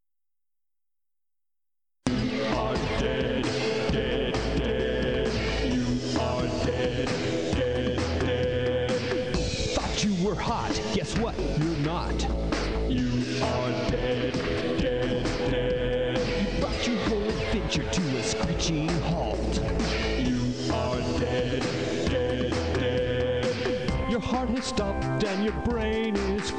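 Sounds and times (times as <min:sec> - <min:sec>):
video game death song with full band and singing voice: 0:02.1 - 0:26.5
speech: 0:18.6 - 0:19.3.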